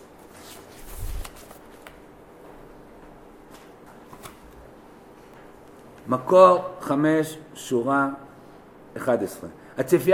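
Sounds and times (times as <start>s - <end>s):
paper pages being shuffled and handled: 0.0s - 2.0s, 3.5s - 4.6s
paper crinkling: 0.2s - 2.0s
speech: 6.1s - 8.3s, 9.0s - 10.1s.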